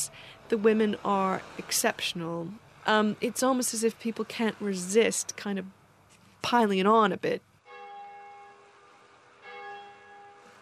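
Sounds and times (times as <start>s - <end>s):
speech: 0.5s - 5.8s, 6.4s - 7.5s
church bells ringing with deep bass tone: 7.7s - 8.6s, 9.4s - 10.5s.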